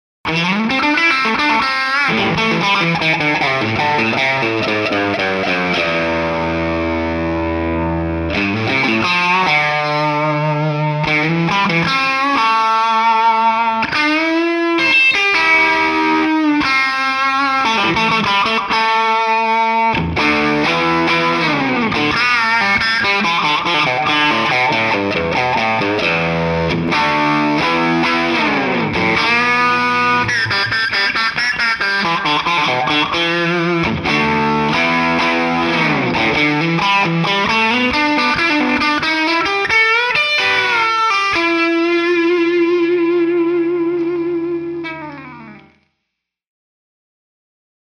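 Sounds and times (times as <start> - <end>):
Telecaster lead guitar with slight delay: 0.3 - 45.8.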